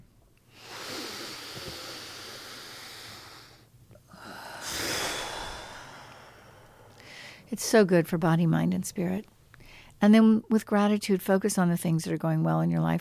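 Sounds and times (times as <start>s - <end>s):
deep breath taken slowly: 0.5s - 7.5s, 9.6s - 10.0s
speech: 7.5s - 9.4s, 10.0s - 12.9s.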